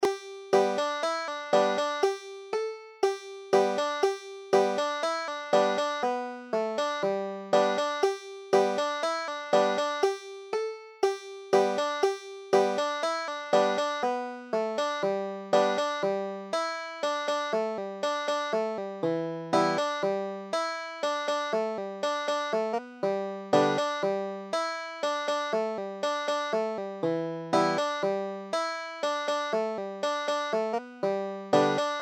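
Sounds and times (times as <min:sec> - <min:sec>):
banjo: 0:00.0 - 0:32.0.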